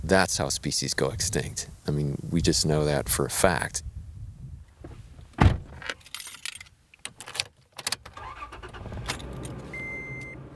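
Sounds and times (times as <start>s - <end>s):
speech: 0.1s - 3.9s
keys jangling: 5.9s - 8.0s, 9.0s - 9.7s
pickup truck engine cranking, starting and running: 7.8s - 10.5s.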